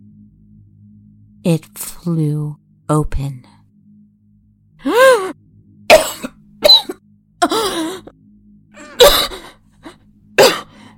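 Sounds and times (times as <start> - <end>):
speech: 1.4 - 3.6
person coughing harshly: 5.9 - 8.1, 8.8 - 10.9.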